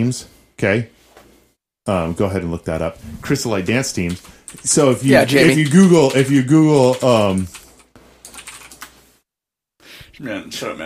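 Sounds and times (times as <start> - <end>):
speech: 0.0 - 1.0, 1.8 - 7.6, 10.2 - 10.8
typing on a computer keyboard: 4.0 - 9.0.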